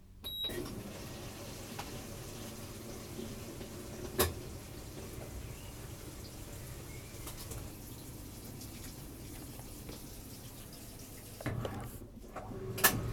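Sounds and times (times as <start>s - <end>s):
washing machine on heavy wash filling with water: 0.3s - 13.1s.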